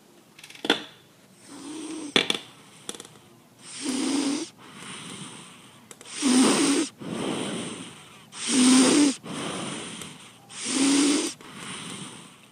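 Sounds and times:
donkey snoring, breathing hard: 1.4s - 2.2s, 3.6s - 12.4s.

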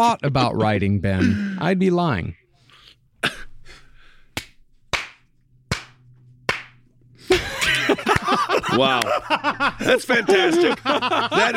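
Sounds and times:
speech: 0.0s - 2.4s, 7.9s - 11.5s
flurry of clapping: 4.4s - 6.8s
single person clapping in a large auditorium: 4.4s - 6.8s, 8.1s - 8.4s
laughter: 7.2s - 11.5s.

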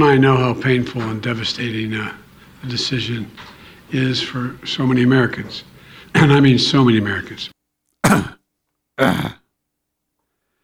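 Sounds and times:
speech: 0.0s - 7.5s, 8.1s - 8.4s, 9.0s - 9.4s
loud harsh throaty coughs: 8.0s - 8.4s, 9.0s - 9.5s.

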